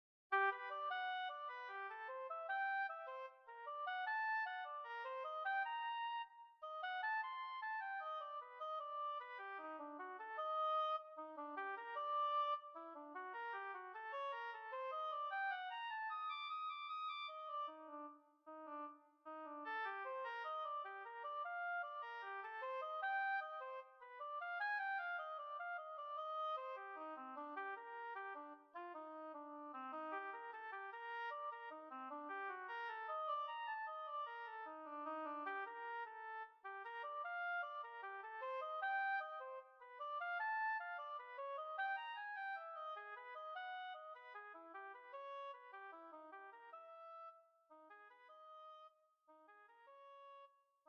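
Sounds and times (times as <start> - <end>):
oboe: 0.4 - 47.4.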